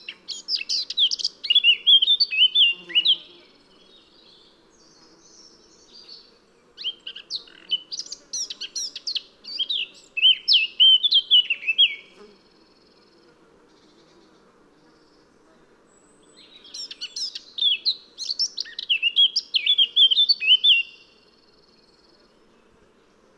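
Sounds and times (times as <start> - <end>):
Eurasian blackcap Sylvia atricapilla song with chattering warble and fluty whistles: 0.0 - 12.2, 16.1 - 21.2.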